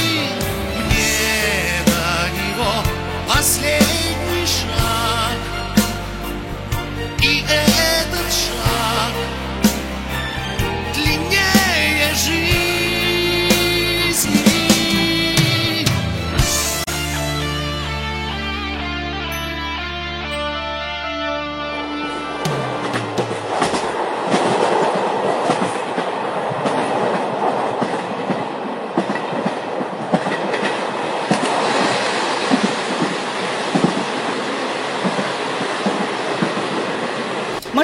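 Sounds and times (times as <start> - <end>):
runaway diesel locomotive wheels rumbling and clattering on track: 0.0 - 16.8, 22.4 - 37.8
sustained tones: 17.8 - 24.0.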